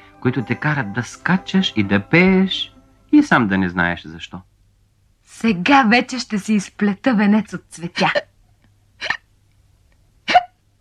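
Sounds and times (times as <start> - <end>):
speech: 0.2 - 4.5, 5.3 - 8.3
hiccups voiced as a tortoise hiccupping: 9.0 - 9.3, 10.2 - 10.6.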